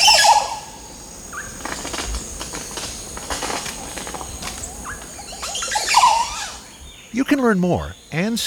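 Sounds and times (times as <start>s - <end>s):
rustling knocks: 1.5s - 6.2s
Montezuma oropendola liquid gurgling song: 5.3s - 8.4s
speech: 7.1s - 8.4s.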